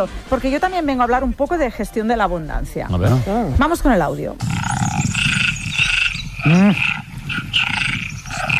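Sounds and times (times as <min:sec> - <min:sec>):
speech: 0:00.0 - 0:04.8, 0:06.4 - 0:07.0
dense chorus of frogs croaking: 0:04.4 - 0:08.5.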